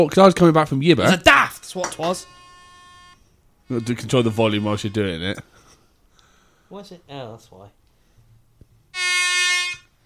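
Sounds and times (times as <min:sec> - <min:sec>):
speech: 0:00.0 - 0:02.4, 0:03.7 - 0:05.6, 0:06.7 - 0:07.8
air horn blast sound effect from app: 0:09.0 - 0:09.9.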